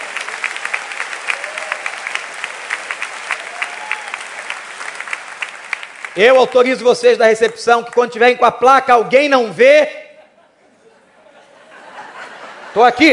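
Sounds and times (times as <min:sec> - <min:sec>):
church audience applauding: 0:00.0 - 0:08.2
speech: 0:06.2 - 0:10.0, 0:12.8 - 0:13.1
laughter: 0:10.2 - 0:13.1.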